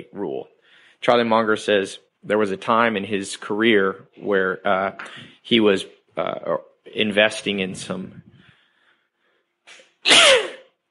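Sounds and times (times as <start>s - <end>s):
speech: 1.0s - 8.2s
person sneezing: 9.7s - 10.8s.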